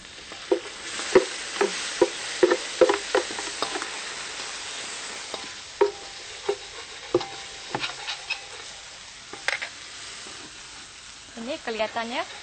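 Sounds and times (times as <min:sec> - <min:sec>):
spice paste sizzling in a hot pan: 0:00.0 - 0:12.4
spatula scraping and stirring in a pan: 0:00.3 - 0:10.7, 0:11.6 - 0:12.4
speech: 0:11.7 - 0:12.4.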